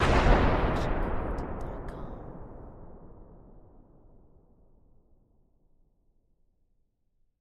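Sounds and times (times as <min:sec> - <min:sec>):
explosion blast: 0:00.0 - 0:04.8.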